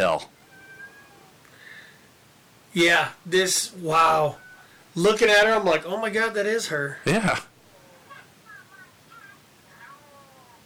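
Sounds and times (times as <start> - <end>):
speech: 0.0 - 0.4, 2.8 - 4.4, 5.0 - 7.5
steady hiss: 0.0 - 10.6
distressed cat meowing: 0.4 - 1.4, 9.7 - 10.6.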